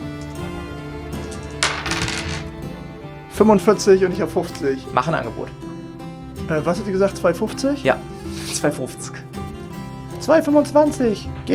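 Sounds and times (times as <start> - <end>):
dice being rolled on a table: 1.6 - 2.5
speech: 3.4 - 5.6, 6.5 - 9.3, 10.3 - 11.5.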